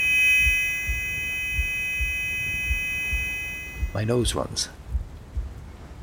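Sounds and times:
high-pitched ringing buzz like ringing in the ear: 0.0 - 4.3
speech: 4.0 - 4.8.

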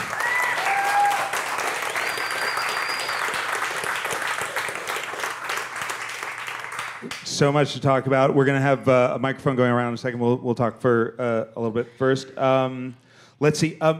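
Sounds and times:
large audience applause: 0.0 - 7.2
whistles from the audience: 1.8 - 3.6
speech: 7.4 - 13.9.

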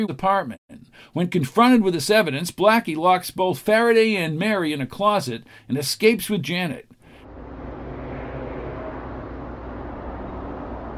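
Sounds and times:
speech: 0.0 - 7.0
car engine rumble of a car driving down the street: 7.1 - 10.9
road noise of a car driving down the street: 7.1 - 10.9.

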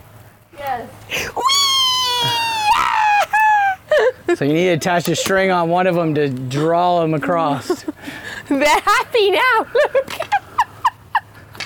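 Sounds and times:
speech: 0.7 - 1.4, 4.4 - 10.4
long drawn-out cat yowl: 1.4 - 3.8
laughter: 2.2 - 5.3.

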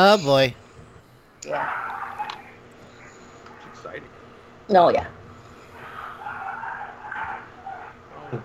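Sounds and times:
speech: 0.0 - 0.6, 1.4 - 1.8, 4.7 - 5.2
neighbor's dogs barking and howling through open windows: 1.5 - 2.6, 5.6 - 8.2.

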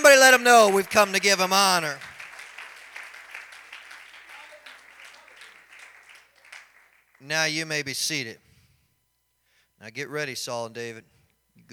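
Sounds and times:
audience in a building applauding in praise: 0.0 - 7.2
speech: 0.2 - 2.1, 7.2 - 8.4, 9.8 - 11.7.

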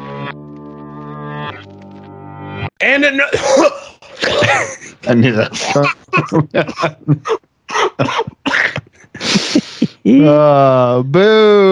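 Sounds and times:
speech: 2.8 - 3.9, 4.5 - 7.4, 8.0 - 8.4, 10.1 - 11.7
laughter: 3.2 - 11.7
man with COVID coughing in short harsh bursts: 3.3 - 10.4.

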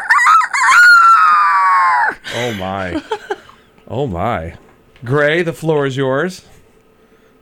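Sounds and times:
person imitating rooster crowing: 0.0 - 2.3
laughter: 2.2 - 3.6
speech: 2.4 - 3.3, 3.9 - 6.5.

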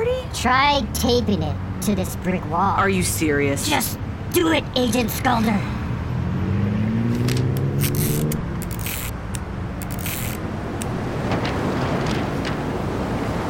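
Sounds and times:
speech: 0.4 - 5.8
wind blowing beside a brick wall: 5.6 - 13.4.

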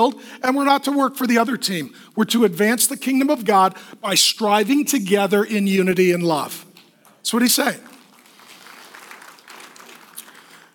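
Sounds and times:
speech: 0.0 - 7.9
audience clapping: 7.0 - 10.7.

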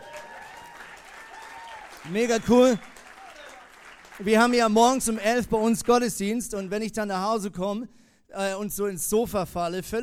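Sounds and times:
room full of people applauding: 0.0 - 4.7
speech: 2.0 - 2.9, 4.2 - 10.0.

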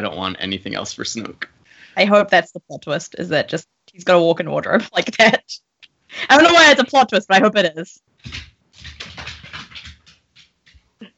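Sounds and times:
speech: 0.0 - 8.5
dog paws scrabbling and pattering in an apartment room: 8.2 - 11.1.

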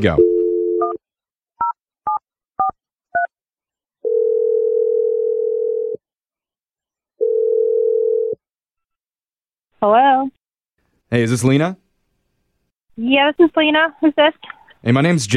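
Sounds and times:
speech: 0.0 - 0.2, 9.8 - 10.4, 11.1 - 11.8, 13.0 - 15.3
long steady telephone ringback tones: 0.2 - 1.0, 4.0 - 6.0, 7.2 - 8.4.

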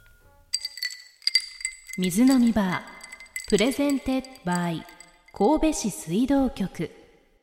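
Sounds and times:
glasses clinking in a toast: 0.0 - 5.4
speech: 2.0 - 2.9, 3.5 - 7.0.

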